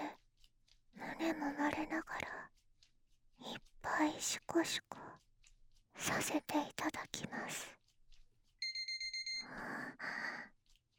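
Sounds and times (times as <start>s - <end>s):
speech: 1.2s - 2.3s, 4.0s - 5.2s, 6.0s - 7.8s, 9.4s - 10.5s
digital timer alarm beeping: 8.6s - 9.6s.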